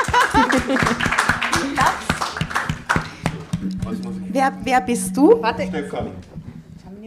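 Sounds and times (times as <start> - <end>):
laughter: 0.0 - 1.2
crowd clapping: 0.0 - 4.1
speech: 4.4 - 6.3.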